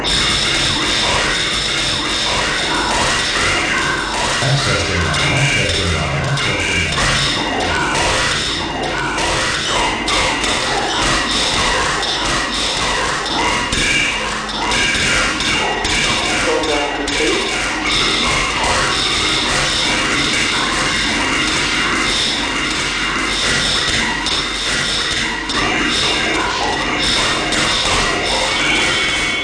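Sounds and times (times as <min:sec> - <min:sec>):
drum machine gunfire: 0:00.1 - 0:29.4.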